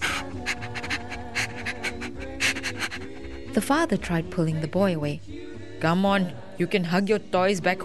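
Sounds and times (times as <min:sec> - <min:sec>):
dog panting while hugged by a boy: 0:00.0 - 0:03.7
speech: 0:03.6 - 0:07.8.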